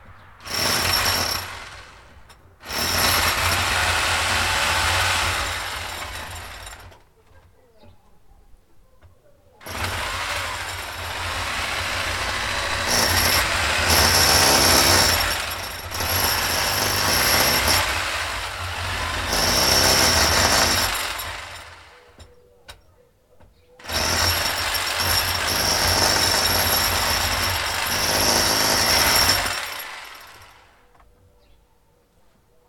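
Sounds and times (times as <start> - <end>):
power drill drilling in concrete outdoors in an open field: 0.4 - 7.0, 9.6 - 22.2, 23.8 - 30.8.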